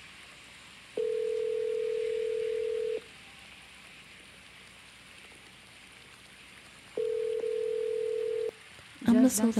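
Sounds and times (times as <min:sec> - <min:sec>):
soft hiss: 0:00.0 - 0:09.5
phone call ringing tone beep: 0:01.0 - 0:03.0, 0:07.0 - 0:08.5
speech: 0:09.1 - 0:09.5.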